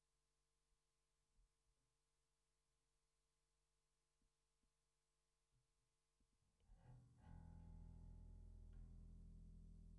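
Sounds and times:
electric bass: 6.8s - 9.9s.

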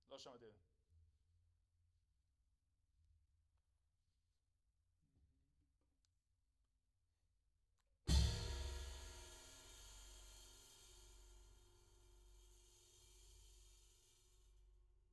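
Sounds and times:
floor tom drum: 8.1s - 11.0s.

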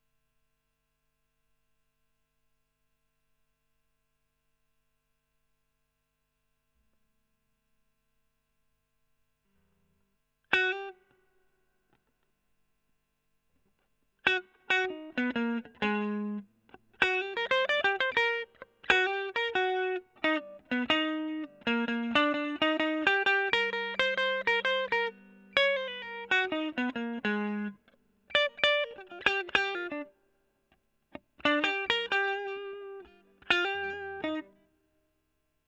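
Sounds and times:
electric guitar solo: 10.5s - 11.1s, 14.2s - 30.1s, 31.2s - 34.6s.

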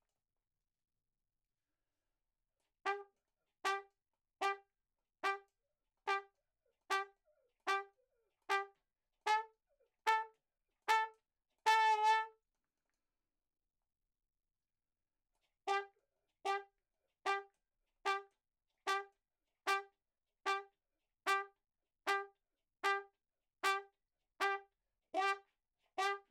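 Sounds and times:
ragtime trumpet in a room: 2.9s - 5.5s, 6.1s - 6.3s, 6.9s - 9.5s, 10.1s - 12.4s, 15.7s - 18.3s, 18.9s - 19.9s, 20.5s - 20.7s, 21.3s - 21.5s, 22.1s - 26.2s.

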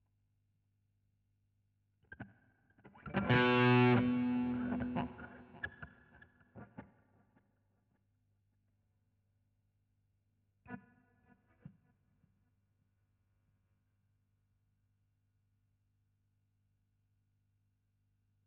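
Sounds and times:
guitar solo: 3.0s - 5.6s.

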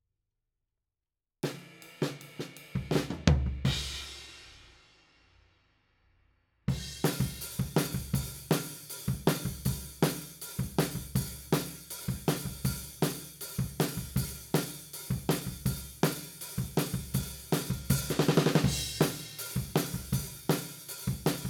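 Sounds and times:
floor drum beat: 2.0s - 4.3s, 6.7s - 21.4s.

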